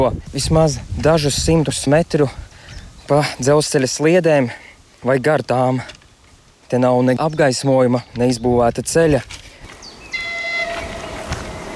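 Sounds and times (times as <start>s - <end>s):
speech: 0.0s - 2.5s, 3.1s - 6.0s, 6.7s - 9.4s
train sounding its horn near the tracks at a forest stop: 10.1s - 11.7s.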